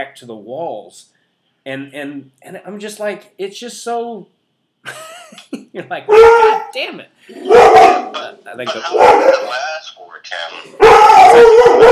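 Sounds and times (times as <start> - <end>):
speech: 0.0 - 11.9
dog howling and barking: 6.1 - 6.7, 7.3 - 8.2, 8.9 - 9.5, 10.7 - 11.9.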